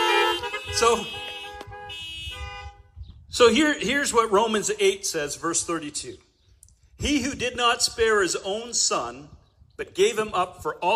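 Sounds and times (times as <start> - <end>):
low rumble of idling engines: 0.0 - 2.2
several car horns honking: 0.0 - 3.0
speech: 0.7 - 1.2, 3.3 - 6.3, 7.0 - 10.9.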